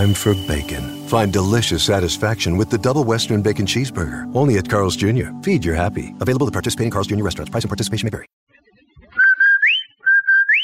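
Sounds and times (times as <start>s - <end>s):
two-note advertising whistle call: 0.0s - 2.2s, 9.2s - 10.6s
speech: 0.0s - 8.4s.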